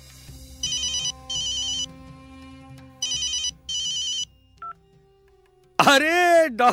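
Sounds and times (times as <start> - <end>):
telephone ringing with bright electronic trills: 0.6 - 1.9, 3.0 - 4.8
speech: 5.8 - 6.7.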